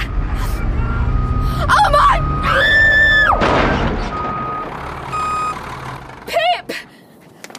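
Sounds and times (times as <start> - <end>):
car engine rumble: 0.0 - 7.3
car reversing warning tone: 0.4 - 2.8, 4.1 - 5.6.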